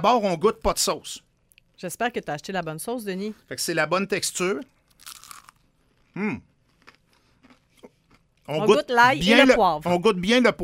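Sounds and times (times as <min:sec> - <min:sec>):
speech: 0:00.0 - 0:05.2, 0:06.2 - 0:06.5, 0:08.5 - 0:10.6
person biting into a crispy chicken nugget: 0:04.9 - 0:08.2
chewing a crispy chicken nugget: 0:05.0 - 0:08.6.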